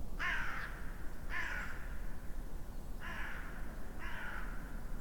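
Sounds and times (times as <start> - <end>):
raven cawing while flying: 0.2 - 2.0, 3.0 - 4.8.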